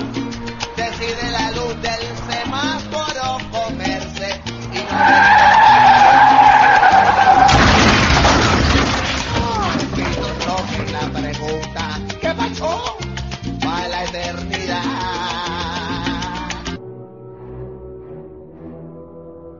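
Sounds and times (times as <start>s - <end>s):
car tires screeching in a high-pitched skid: 0.0s - 10.8s.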